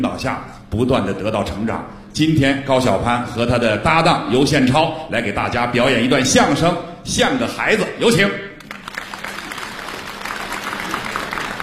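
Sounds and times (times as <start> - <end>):
speech: 0.0 - 8.5
audience applause for a crosstalk comedy act: 8.6 - 11.6.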